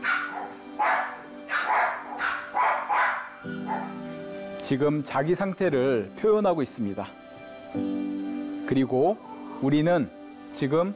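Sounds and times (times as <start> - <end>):
pet dog barking: 0.0 - 4.0
speech: 4.7 - 7.9, 8.7 - 10.9.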